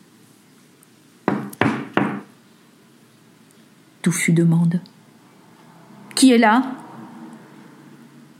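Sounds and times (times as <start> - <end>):
knocking on a wooden door: 1.3 - 2.3
speech: 4.0 - 5.0, 6.2 - 6.8.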